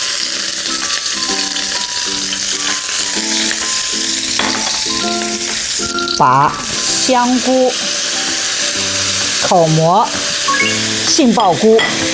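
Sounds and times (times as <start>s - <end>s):
chopped scallion and garlic sizzling in hot oil: 0.0s - 12.1s
soft melodic tones: 3.5s - 7.8s, 10.4s - 12.1s
speech: 6.2s - 8.0s, 9.4s - 12.1s.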